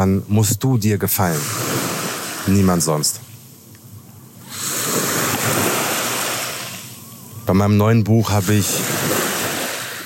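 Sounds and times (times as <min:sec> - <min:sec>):
speech: 0:00.0 - 0:03.3, 0:07.5 - 0:09.2
breezy hiss: 0:00.0 - 0:10.0
ocean waves rushing onto the shore: 0:01.0 - 0:10.0.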